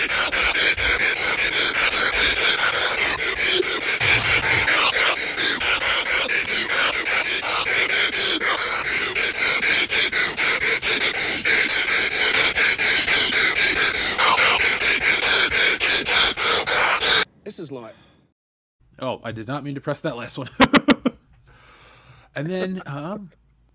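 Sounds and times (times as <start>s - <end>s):
heavy rapid panting breaths: 0.0s - 17.3s, 21.4s - 22.3s
speech: 19.3s - 20.8s, 22.4s - 23.4s.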